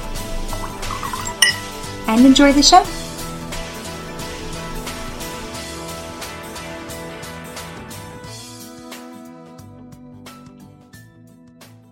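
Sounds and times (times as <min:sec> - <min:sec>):
wine trickling into a glass: 0:00.5 - 0:01.7
bright ringing glass clink: 0:00.5 - 0:01.8
speech: 0:02.1 - 0:03.0.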